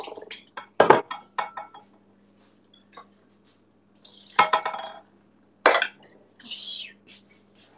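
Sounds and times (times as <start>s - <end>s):
beer glass clinking while dishes are washed: 0.6s - 1.9s, 4.3s - 5.1s, 5.7s - 6.1s.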